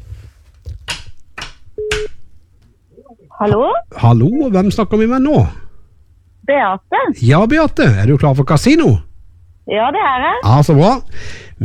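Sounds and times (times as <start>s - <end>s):
phone line clicks on an outgoing call to a radio listener: 1.8s - 2.2s
speech: 3.4s - 5.6s, 6.5s - 11.6s.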